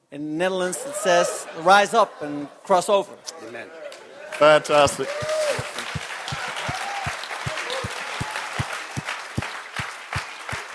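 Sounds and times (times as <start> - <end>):
speech: 0.1 - 3.8, 4.4 - 5.4
crowd applauding: 4.2 - 10.7
rhythmic clapping in time: 4.6 - 10.7
faint cheers: 4.8 - 9.1.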